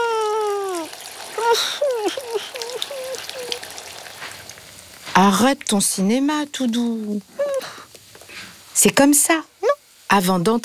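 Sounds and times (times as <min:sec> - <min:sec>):
short wavering vocal cries: 0:00.0 - 0:03.7
shower water running: 0:00.0 - 0:07.8
speech: 0:01.5 - 0:02.5, 0:05.2 - 0:07.4, 0:08.8 - 0:09.5, 0:10.1 - 0:10.6.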